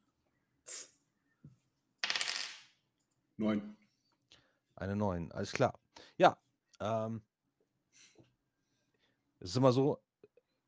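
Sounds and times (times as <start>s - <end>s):
dice rolled for a tabletop role-playing game: 2.0s - 2.8s
speech: 3.4s - 3.8s, 4.8s - 7.3s, 9.4s - 10.0s.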